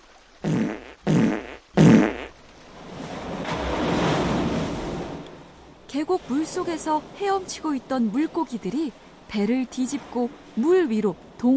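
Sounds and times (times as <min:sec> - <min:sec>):
splashing churning water: 0:00.0 - 0:11.5
sputtering fart sound effect blasts: 0:00.4 - 0:02.3
speech: 0:06.0 - 0:11.5.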